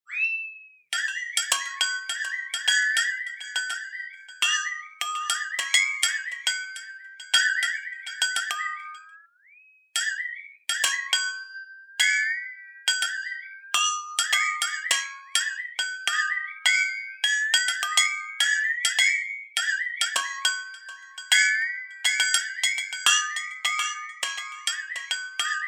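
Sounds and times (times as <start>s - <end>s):
flexatone: 0.1s - 9.4s, 10.0s - 25.6s.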